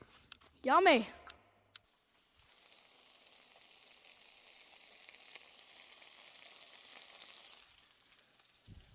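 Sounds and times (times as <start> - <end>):
speech: 0.6 - 1.2
ramps sauteing in a pan: 1.9 - 8.9.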